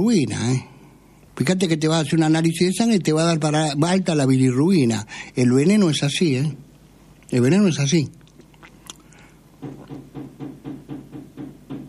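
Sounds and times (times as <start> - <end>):
speech: 0.0 - 0.7, 1.4 - 6.7, 7.3 - 8.2
knocking on a door: 9.6 - 11.8.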